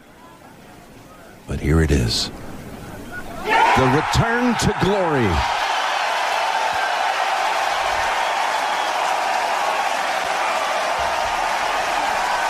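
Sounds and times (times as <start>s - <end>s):
speech: 1.5s - 2.5s, 3.8s - 5.6s
large outdoor golf crowd roaring and cheering: 3.2s - 12.4s
golf crowd applause: 5.2s - 12.4s.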